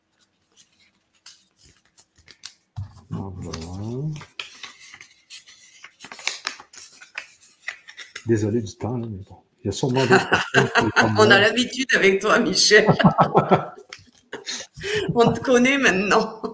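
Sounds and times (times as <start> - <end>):
paper sheets rustling and creasing as they are folded into four: 0.0 - 8.4, 13.8 - 14.4
speech: 8.3 - 13.7, 15.2 - 16.5
laughter: 10.0 - 11.8, 12.4 - 13.8, 14.4 - 16.5.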